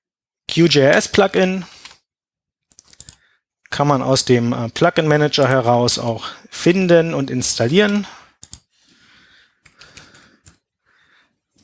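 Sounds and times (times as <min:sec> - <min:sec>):
speech: 0:00.6 - 0:01.7, 0:03.8 - 0:08.2
typing on a computer keyboard: 0:02.7 - 0:03.2, 0:08.4 - 0:08.7.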